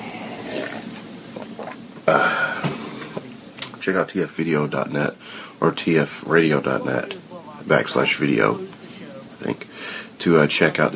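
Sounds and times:
loud burp: 0.0s - 3.2s
wet-sounding noise: 0.0s - 10.9s
speech: 2.1s - 2.4s, 3.9s - 8.8s, 9.4s - 10.9s.

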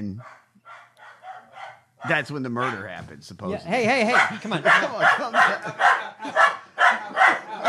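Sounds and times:
speech: 0.1s - 0.4s, 2.0s - 6.6s
dog barking: 0.2s - 3.0s, 4.0s - 7.6s
laughter: 3.6s - 7.6s.

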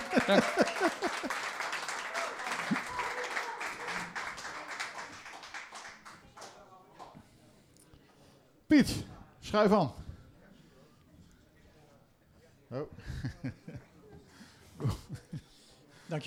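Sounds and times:
laughter: 0.0s - 5.1s, 13.0s - 15.7s
audience applause: 0.0s - 6.6s
speech: 0.2s - 1.5s, 8.8s - 10.0s.

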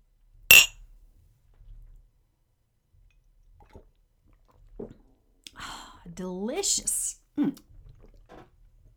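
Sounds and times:
glasses of Tang clinking in a toast: 0.5s - 0.7s
speech: 6.2s - 7.6s.

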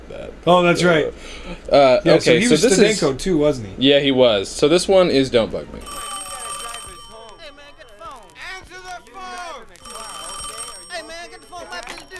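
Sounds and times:
speech: 0.4s - 6.1s
old-style telephone bell ringing: 5.8s - 12.1s
overlapping voices: 5.9s - 12.1s.

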